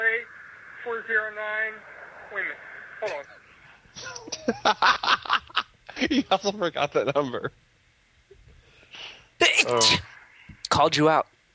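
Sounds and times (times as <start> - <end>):
breathy intake of air: 0.0 - 4.4, 8.6 - 10.7
speech: 1.1 - 3.4, 4.0 - 5.4, 6.0 - 7.7, 9.6 - 10.1, 10.7 - 11.3
laughter: 4.0 - 5.7
sneeze burst: 9.4 - 10.1.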